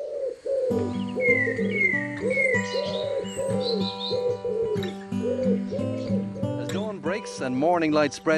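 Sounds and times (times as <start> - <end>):
doves cooing in a dawn chorus: 0.0 - 7.7
several other birds trilling and chirping in a dawn chorus: 0.0 - 8.3
speech: 0.7 - 5.0, 7.2 - 8.3.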